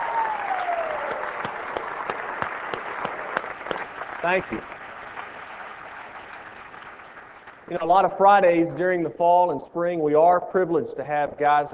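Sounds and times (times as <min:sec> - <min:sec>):
audience applause: 0:00.0 - 0:08.3
speech: 0:04.2 - 0:04.8, 0:07.7 - 0:11.7.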